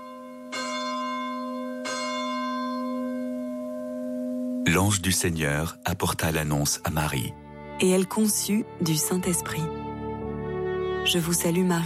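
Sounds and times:
church bells ringing: 0:00.0 - 0:07.3
speech: 0:04.7 - 0:09.9, 0:11.0 - 0:11.8.

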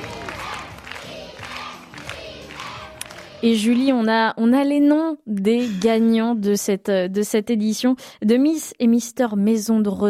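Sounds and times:
crowd cheering and chanting a name at a retirement-home beauty pageant: 0:00.0 - 0:04.0
speech: 0:03.4 - 0:10.0.

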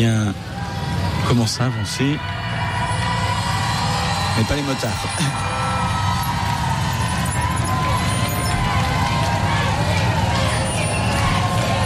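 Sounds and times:
large crowd chanting and singing thanks as the Pope's car moves along: 0:00.1 - 0:11.8
speech: 0:01.3 - 0:02.6, 0:04.4 - 0:05.7.

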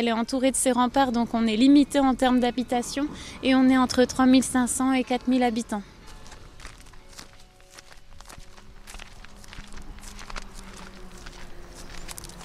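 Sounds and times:
speech: 0:00.0 - 0:05.9
constant low hum: 0:00.0 - 0:12.4
faint tonal drones: 0:00.0 - 0:12.4
footsteps climbing a few steps onto the ramparts of a small fortified town: 0:06.0 - 0:12.4.

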